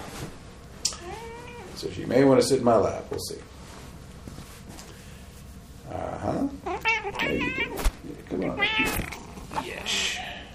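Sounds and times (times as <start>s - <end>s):
soft rustling: 0.0s - 9.6s
cat meowing: 0.9s - 1.8s, 6.6s - 9.2s
speech: 1.8s - 3.5s.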